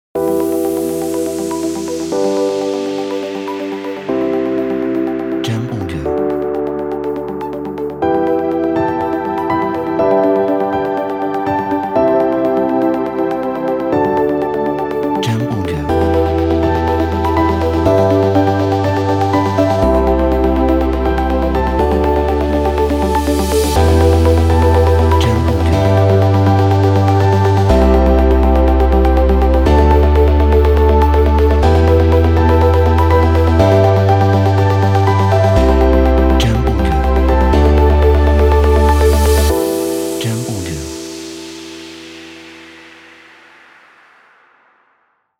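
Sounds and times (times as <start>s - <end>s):
ambient corporate music: 0.2s - 44.6s.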